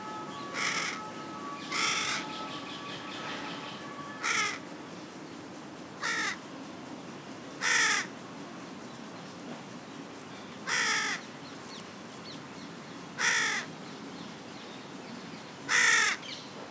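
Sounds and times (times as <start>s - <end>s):
carrion crow Corvus corone rasping caws: 0.1s - 4.6s, 6.0s - 6.4s, 7.6s - 8.1s, 10.7s - 11.2s, 13.2s - 13.7s, 15.7s - 16.2s.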